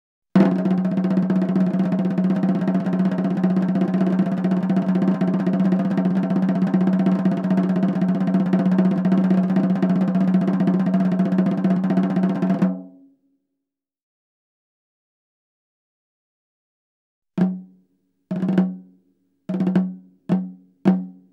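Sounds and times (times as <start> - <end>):
snare drum executioner's roll: 0.4 - 12.8, 18.3 - 18.8, 19.5 - 21.1.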